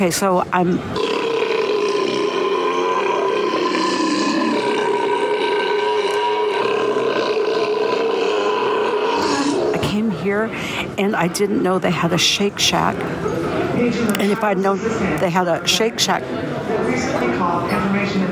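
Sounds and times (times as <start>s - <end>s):
speech: 0.0s - 1.1s, 10.2s - 18.2s
long loud croaky burp in a food court: 1.0s - 10.0s.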